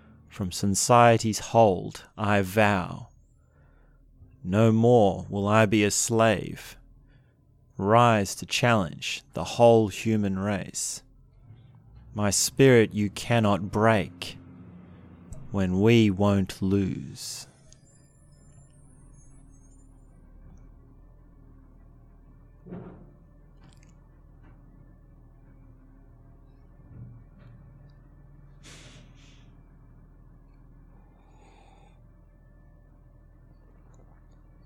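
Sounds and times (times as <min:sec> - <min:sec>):
garbage truck engine idling outside, muffled through a window: 0:00.0 - 0:34.6
speech: 0:00.3 - 0:03.1, 0:04.4 - 0:06.8, 0:07.8 - 0:11.0, 0:12.2 - 0:14.4, 0:15.5 - 0:17.5
garbage truck hydraulic hiss: 0:28.6 - 0:29.5.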